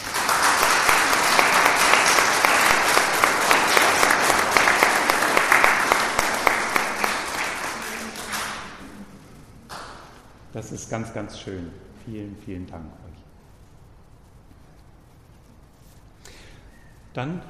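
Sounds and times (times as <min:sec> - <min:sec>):
audience applauding for musicians: 0:00.0 - 0:10.1
speech: 0:10.6 - 0:13.1, 0:17.2 - 0:17.4.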